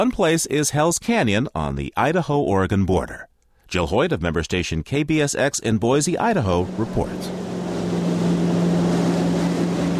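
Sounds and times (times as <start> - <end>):
speech: 0.0 - 7.5
metal jet boat engine roaring up a river through a deep canyon: 6.1 - 9.9
rushing wash of water from a jet boat on the Snake River: 6.2 - 9.9
wind rushing past a speeding jet boat: 6.6 - 9.9.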